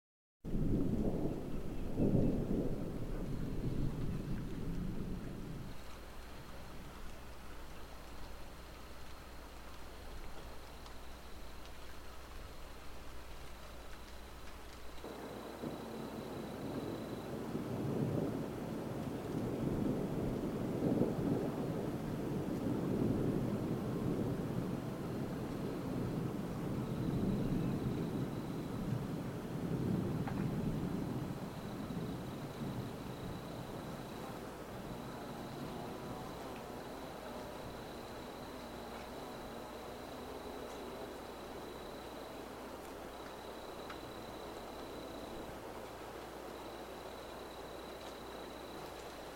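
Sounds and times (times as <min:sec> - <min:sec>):
rain: 0:00.4 - 0:49.3
thunder: 0:00.5 - 0:07.0, 0:15.0 - 0:45.5.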